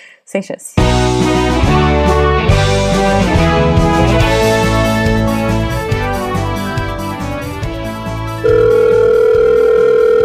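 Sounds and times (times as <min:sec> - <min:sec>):
speech: 0:00.3 - 0:01.8
harmonic music: 0:00.8 - 0:09.6
telephone dial tone as a call is placed: 0:08.4 - 0:10.2.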